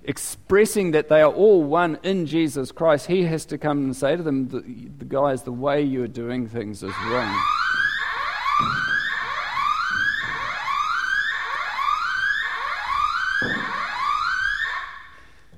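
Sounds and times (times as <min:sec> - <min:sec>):
speech: 0:00.1 - 0:07.6, 0:08.6 - 0:08.9
building fire alarm blaring a rising electronic whoop: 0:06.9 - 0:15.5.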